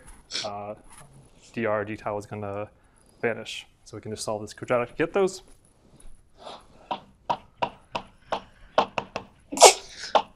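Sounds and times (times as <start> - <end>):
speech: 0.3 - 5.6
tapping knocks: 6.9 - 9.4
person sneezing: 9.6 - 10.3.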